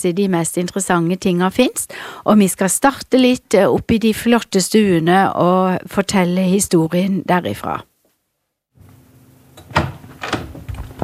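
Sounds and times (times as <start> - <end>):
speech: 0.0 - 7.9
door opening and shutting: 9.6 - 11.0.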